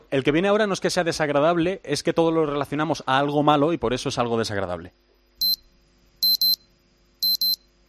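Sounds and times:
speech: 0.1s - 5.2s
phone wake-up alarm beeping in high-pitched electronic bursts: 5.4s - 5.6s, 6.2s - 6.6s, 7.2s - 7.6s.

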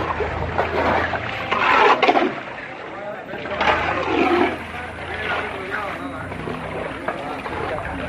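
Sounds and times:
broom scrubbing and pushing floodwater across a floor: 0.0s - 8.0s
murmur of people: 0.0s - 8.0s.

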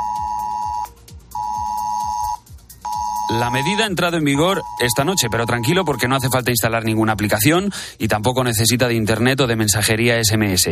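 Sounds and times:
mobile phone emergency alert alarm tone: 0.0s - 6.5s
speech: 3.3s - 10.7s.

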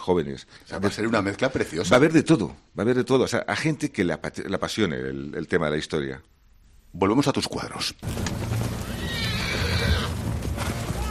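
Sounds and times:
speech: 0.0s - 8.6s
horse whinnying shrilly: 8.6s - 11.0s.

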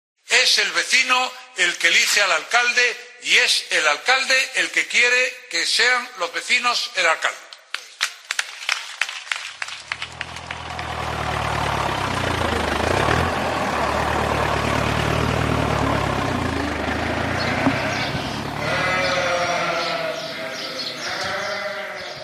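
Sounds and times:
speech: 0.4s - 7.4s
low engine rumble: 9.8s - 20.5s
flock of sheep bleating: 16.6s - 22.2s.

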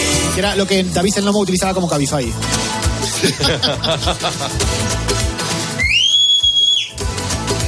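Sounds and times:
busy music: 0.0s - 7.6s
speech: 0.4s - 5.1s
laughter: 3.0s - 4.9s
sharp whistle calling a fox: 5.8s - 7.0s.

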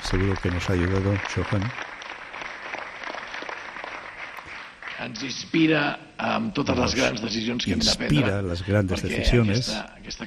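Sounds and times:
audience applause at a political campaign rally: 0.0s - 5.1s
speech: 0.1s - 1.9s, 5.0s - 10.2s.

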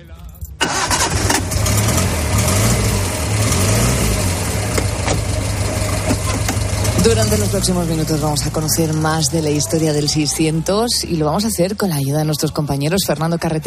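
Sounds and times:
SEAT 600 car engine idling and revving: 0.4s - 12.1s
small car engine sputtering to life: 0.6s - 10.7s
speech: 7.0s - 13.6s.

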